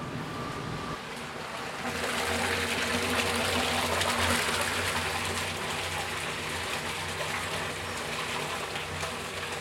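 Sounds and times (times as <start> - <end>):
low mechanical hum: 0.0 - 9.5
100 liters of hot water pouring from a batcher into a large cooking pot: 1.4 - 9.5.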